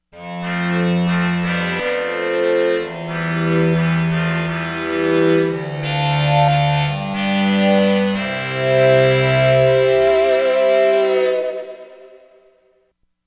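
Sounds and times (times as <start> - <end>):
ethno strings on a Korg: 0.4 - 10.7.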